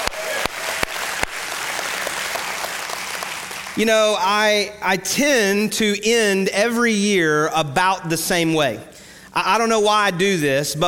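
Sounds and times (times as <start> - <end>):
church audience applauding: 0.0 - 3.8
sharp individual claps: 0.0 - 3.8
speech: 3.8 - 10.8.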